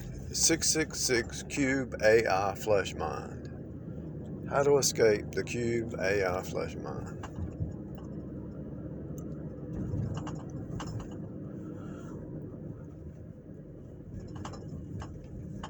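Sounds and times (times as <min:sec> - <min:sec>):
SUV engine and road rumble: 0:00.0 - 0:15.6
speech: 0:00.4 - 0:03.5, 0:04.5 - 0:07.3
SUV clunks and rattles jolting over bumps: 0:07.0 - 0:08.6, 0:09.2 - 0:11.5, 0:14.1 - 0:15.6.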